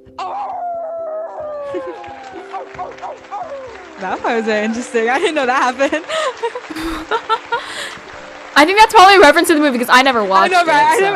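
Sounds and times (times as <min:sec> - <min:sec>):
wolves howling in long sliding tonal wails: 0:00.2 - 0:05.2
laughter: 0:01.6 - 0:08.0
speech: 0:01.7 - 0:08.0, 0:08.6 - 0:11.1.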